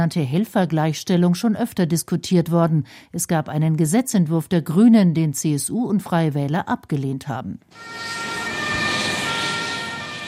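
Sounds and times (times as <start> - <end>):
speech: 0.0 - 8.4
ambulance siren wailing as the ambulance drives off: 7.7 - 10.2.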